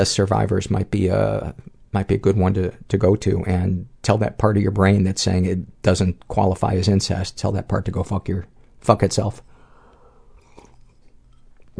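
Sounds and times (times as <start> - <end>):
speech: 0.0 - 9.5
person slurping green tea: 10.3 - 11.2.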